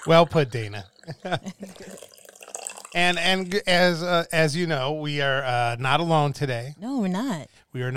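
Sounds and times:
speech: 0:00.0 - 0:02.1, 0:02.9 - 0:07.9
coffee pouring into a cup: 0:00.0 - 0:03.9.

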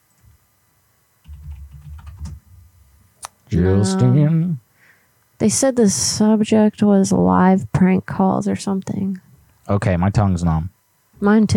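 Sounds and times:
typing on a computer keyboard: 0:01.3 - 0:02.4
speech: 0:03.5 - 0:04.6, 0:05.4 - 0:11.5.

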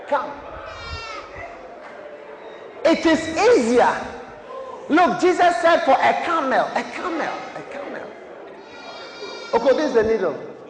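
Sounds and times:
busy room murmuring faintly: 0:00.0 - 0:10.6
speech: 0:00.1 - 0:00.9, 0:02.8 - 0:04.2, 0:04.9 - 0:07.8, 0:09.5 - 0:10.5
goat bleating: 0:00.7 - 0:01.3, 0:08.6 - 0:10.2.

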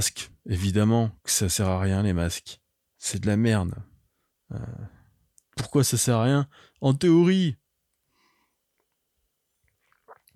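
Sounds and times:
speech: 0:00.0 - 0:03.9, 0:04.5 - 0:05.0, 0:05.6 - 0:07.6
faint wet mouth sounds: 0:09.6 - 0:10.3
soft slurp of water: 0:09.6 - 0:10.3
swallowing water: 0:09.7 - 0:10.3.

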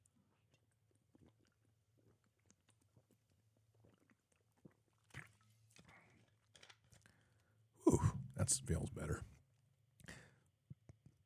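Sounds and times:
gulp: 0:07.8 - 0:09.3
person sipping water: 0:07.9 - 0:09.2
speech: 0:08.5 - 0:09.4.

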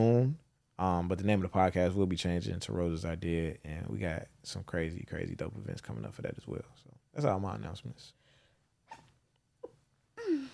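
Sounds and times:
speech: 0:00.0 - 0:08.2
sneeze: 0:08.9 - 0:09.1.

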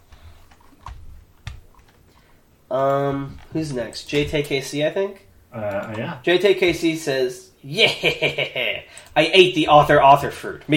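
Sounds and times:
hard typing on a computer keyboard: 0:00.0 - 0:04.8, 0:08.9 - 0:10.7
low hum: 0:00.0 - 0:10.7
speech: 0:02.7 - 0:10.7
laughter: 0:07.7 - 0:08.9.

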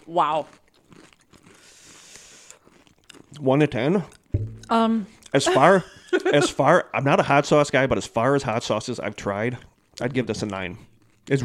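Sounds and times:
speech: 0:00.0 - 0:00.6, 0:03.4 - 0:11.4
person chewing crunchy food: 0:00.0 - 0:05.4, 0:08.5 - 0:11.4.

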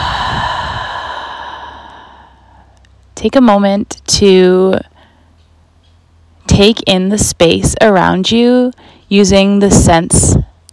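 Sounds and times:
deep breath exhale during a mindfulness meditation exercise: 0:00.0 - 0:02.8
speech: 0:03.2 - 0:04.9, 0:06.6 - 0:10.5.

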